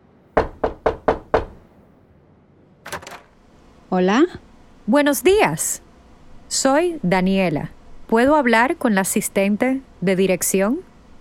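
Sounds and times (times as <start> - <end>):
knocking on a door: 0.4 - 1.6
speech: 3.9 - 5.8, 6.5 - 10.9.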